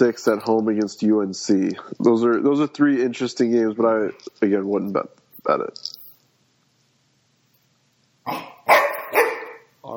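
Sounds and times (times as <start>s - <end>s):
speech: 0.0s - 5.9s, 8.3s - 8.5s
dog barking: 8.3s - 9.7s.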